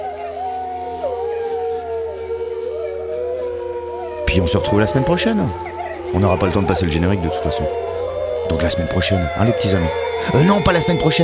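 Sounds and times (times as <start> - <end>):
low steady droning backdrop: 0.0 - 11.2
several wolves howling together in a music track: 0.0 - 11.2
speech: 4.4 - 7.8, 8.5 - 11.2.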